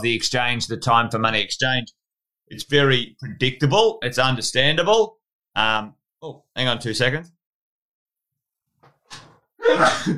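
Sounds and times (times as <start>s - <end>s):
speech: 0.0s - 7.4s, 9.1s - 10.1s
person sneezing: 9.6s - 10.1s.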